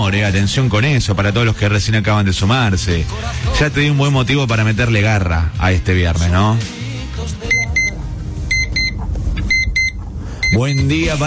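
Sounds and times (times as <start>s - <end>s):
speech: 0.1s - 7.5s, 10.5s - 11.2s
low steady rumble: 7.1s - 11.2s
alarm clock beeping in shrill electronic double beeps: 7.5s - 11.1s.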